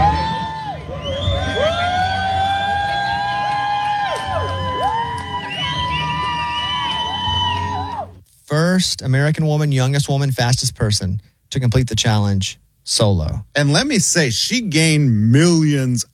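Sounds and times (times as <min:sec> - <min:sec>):
crowd cheering at a finish line: 0:00.0 - 0:08.2
overlapping whoops high yells and drawn-out shouts: 0:00.0 - 0:08.2
speech: 0:08.8 - 0:16.1.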